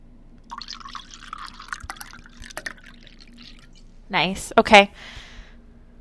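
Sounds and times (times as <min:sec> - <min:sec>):
wine pouring from a freshly opened bottle: 0:00.4 - 0:03.9
speech: 0:04.1 - 0:05.2.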